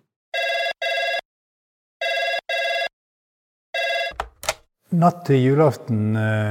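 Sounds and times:
telephone ringing in a double-burst pattern: 0.4s - 1.2s, 2.0s - 2.9s, 3.8s - 4.3s
speech: 4.9s - 6.5s.

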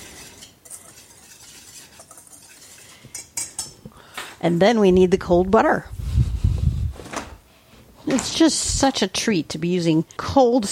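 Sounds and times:
whisk stirring ingredients for strawberry drop biscuits in a bowl: 0.0s - 3.7s
speech: 4.4s - 6.0s, 8.2s - 10.7s.

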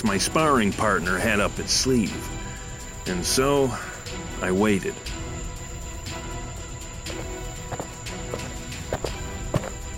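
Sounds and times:
speech: 0.0s - 2.4s, 3.1s - 5.2s
hiss: 0.0s - 9.9s
footsteps: 7.1s - 9.9s.

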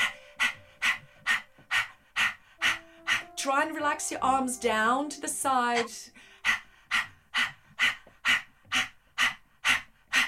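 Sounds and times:
sharp open-mouthed panting with tongue out: 0.0s - 3.4s, 6.2s - 10.2s
speech: 3.4s - 6.3s.

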